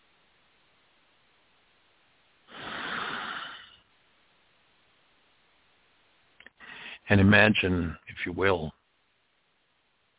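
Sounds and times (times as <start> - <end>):
single slow deep breath: 2.5 - 3.9, 6.4 - 7.1
speech: 7.1 - 8.8.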